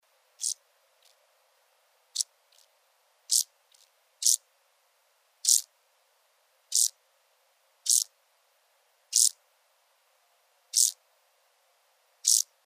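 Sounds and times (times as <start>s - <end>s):
Chorthippus brunneus: 0.4s - 1.2s, 2.1s - 2.7s, 3.3s - 4.4s, 5.4s - 5.7s, 6.7s - 7.0s, 7.8s - 8.1s, 9.1s - 9.4s, 10.7s - 11.0s, 12.2s - 12.5s.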